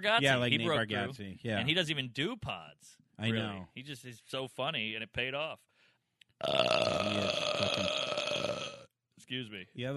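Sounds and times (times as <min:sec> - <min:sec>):
speech: 0:00.0 - 0:05.7, 0:06.4 - 0:07.9, 0:09.3 - 0:09.9
long loud burp: 0:06.4 - 0:08.9.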